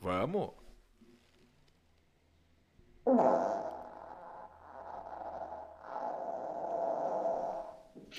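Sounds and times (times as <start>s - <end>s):
speech: 0.0s - 0.6s
long recorded human fart: 3.0s - 8.1s.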